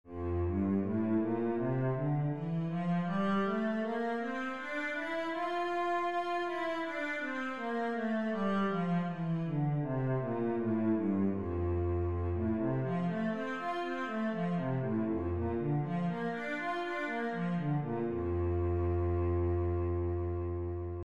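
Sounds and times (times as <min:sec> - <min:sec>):
cello in F major: 0:00.1 - 0:21.0.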